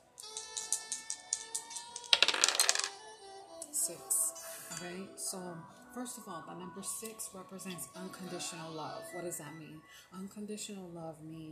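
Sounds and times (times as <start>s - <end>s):
dice rattling in a hand or cup: 0.2s - 3.0s
speech: 4.8s - 11.5s.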